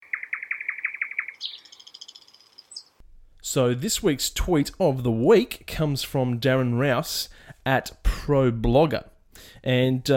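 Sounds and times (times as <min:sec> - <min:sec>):
bird chirping and trilling: 0:00.0 - 0:03.0
speech: 0:03.5 - 0:10.1.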